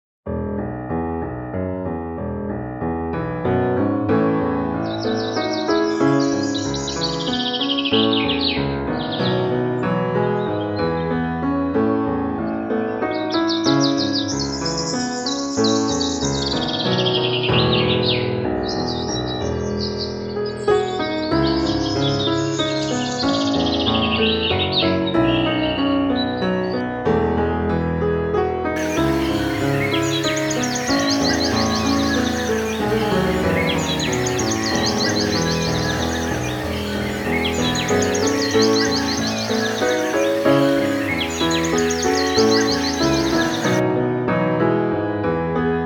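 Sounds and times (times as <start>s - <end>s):
piano playing: 0.4s - 28.0s, 28.6s - 45.6s
birdsong in harmony with piano: 4.8s - 9.6s, 13.1s - 26.5s, 28.8s - 43.8s.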